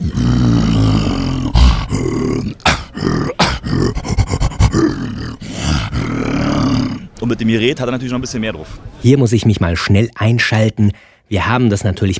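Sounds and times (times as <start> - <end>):
human voice imitating an ape's roar: 0.0 - 7.1
speech: 7.3 - 12.1.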